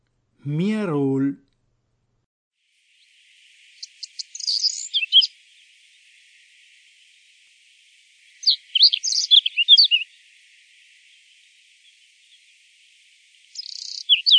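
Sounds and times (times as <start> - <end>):
speech: 0.4 - 1.4
common reed bunting song with ticks and twittering jingle: 3.0 - 7.2, 8.1 - 14.3.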